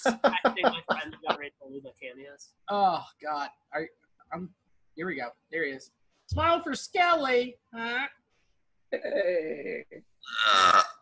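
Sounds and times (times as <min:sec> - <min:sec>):
speech: 0:00.0 - 0:00.8, 0:02.7 - 0:03.9, 0:06.5 - 0:08.1
laughter: 0:00.0 - 0:01.5
long guttural burp: 0:08.9 - 0:11.0
loud raspy belch-like sound: 0:10.2 - 0:11.0.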